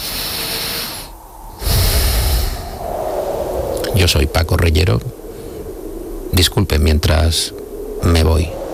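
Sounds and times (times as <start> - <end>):
speaker taking a deep breath: 0.0 - 2.9, 5.2 - 6.0
speech: 4.0 - 5.2, 6.3 - 8.6.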